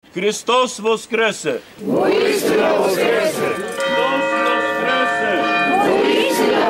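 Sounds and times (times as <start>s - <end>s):
speech: 0.2s - 4.2s
voices talking or chanting: 1.5s - 6.6s
Orthodox church bells ringing at midnight: 2.5s - 6.6s.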